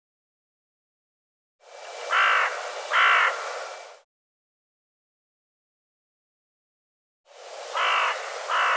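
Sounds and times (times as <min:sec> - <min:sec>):
bird giving harsh cawing calls: 0:02.1 - 0:03.6, 0:07.7 - 0:08.7.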